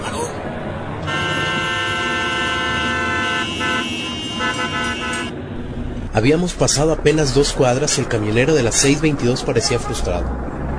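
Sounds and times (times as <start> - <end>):
heavy city traffic rumbling: 0.0 - 10.7
loud vehicle horn blaring in one long sustained blast: 1.0 - 5.8
speech: 6.2 - 10.6.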